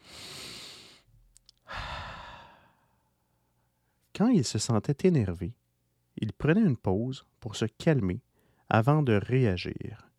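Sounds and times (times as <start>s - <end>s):
slow deep calming breathing: 0.0s - 3.2s
speech: 4.2s - 5.6s, 6.2s - 10.1s.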